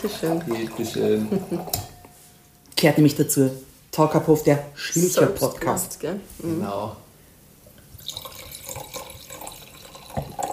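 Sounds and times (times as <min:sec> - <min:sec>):
Schilcher wine pouring into a glass: 0:00.0 - 0:01.9, 0:08.0 - 0:10.5
speech: 0:00.0 - 0:01.9, 0:02.8 - 0:07.0.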